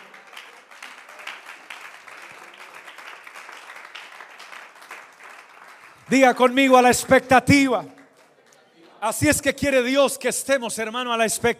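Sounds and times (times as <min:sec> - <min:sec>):
crowd applauding: 0:00.0 - 0:09.2
speech: 0:06.1 - 0:08.0, 0:09.0 - 0:11.5.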